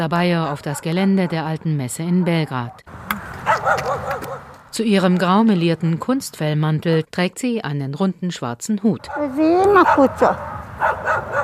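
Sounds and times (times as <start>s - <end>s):
speech: 0.0s - 11.4s
steady outdoor hum: 0.0s - 11.4s
stray dogs barking and yipping: 0.3s - 1.5s, 3.4s - 4.5s, 9.0s - 11.4s.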